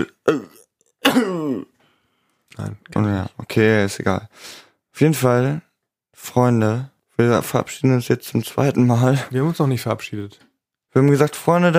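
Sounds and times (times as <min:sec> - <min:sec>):
speech: 0:00.0 - 0:01.7, 0:02.6 - 0:11.7
strained half-held-back cough: 0:00.0 - 0:01.7
person clearing throat: 0:00.0 - 0:01.8.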